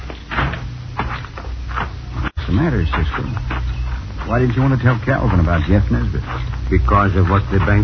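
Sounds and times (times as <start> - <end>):
back door being opened and shut with wooden clunks and rattles: 0.1 - 1.2
speech: 2.6 - 3.6, 4.3 - 7.8.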